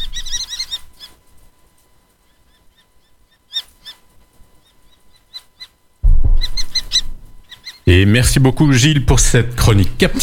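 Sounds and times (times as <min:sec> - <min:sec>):
shrill common kestrel calls: 0:00.0 - 0:01.2, 0:02.2 - 0:07.9
low rumble of noise: 0:06.0 - 0:07.8
speech: 0:07.9 - 0:10.2.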